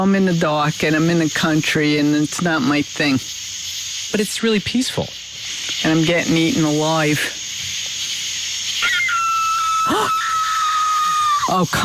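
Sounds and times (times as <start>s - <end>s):
speech: 0.0s - 3.4s, 4.1s - 5.2s, 5.8s - 7.4s, 11.5s - 11.8s
night insects hissing: 0.0s - 11.8s
coyote or fox screaming at night in the countryside: 8.8s - 11.8s.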